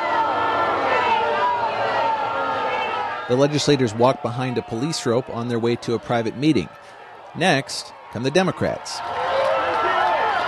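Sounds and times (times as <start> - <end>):
large protest crowd yelling and cheering inside a big hall: 0.0 - 10.4
speech: 3.3 - 9.2.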